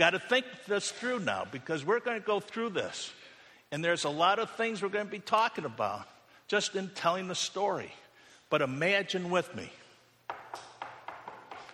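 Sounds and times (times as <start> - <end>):
speech: 0.0 - 9.8
knocking on a door: 10.3 - 11.7.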